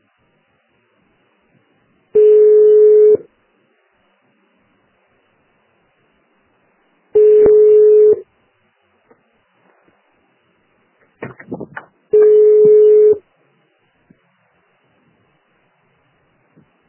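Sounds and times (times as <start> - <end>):
telephone ringback tone: 2.2 - 3.2, 7.2 - 8.2, 12.2 - 13.2
telephone dialing tones when calling back after a dropped call: 7.2 - 8.2, 12.2 - 13.2.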